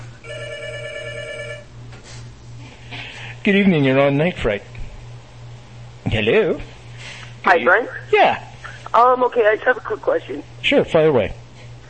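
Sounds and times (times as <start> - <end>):
low continuous hum: 0.0 - 11.8
telephone ringing with an electronic trill: 0.2 - 1.7
speech: 3.4 - 4.7, 6.1 - 6.7, 7.4 - 11.4.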